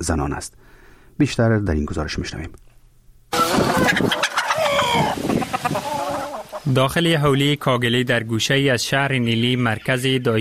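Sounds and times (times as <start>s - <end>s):
speech: 0.0s - 2.6s, 3.9s - 4.3s, 6.6s - 10.3s
rooster-like crow: 3.3s - 6.5s
over 1000 chickens clucking and squawking on a poultry farm in Nili, Afghanistan: 3.3s - 6.9s.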